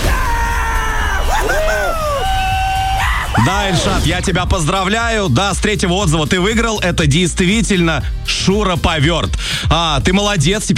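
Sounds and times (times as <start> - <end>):
several voices whooping and shouting a victory yell: 0.0 - 4.0
speech: 3.5 - 10.7.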